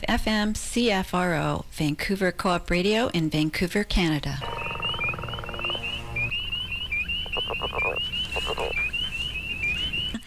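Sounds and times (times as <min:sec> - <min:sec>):
speech: 0:00.1 - 0:04.7
leopard frogs calling with rattling snore-like bursts: 0:04.4 - 0:09.1
chorus of spring peepers peeping: 0:04.4 - 0:10.2.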